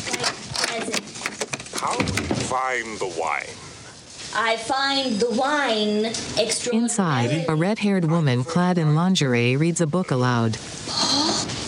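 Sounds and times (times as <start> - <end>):
key rattling and clicking in a wooden door lock: 0.0 - 2.3
speech: 1.8 - 3.6, 4.4 - 11.0.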